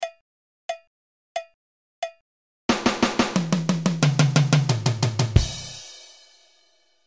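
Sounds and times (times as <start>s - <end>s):
four-beat drum roll: 2.7s - 6.6s.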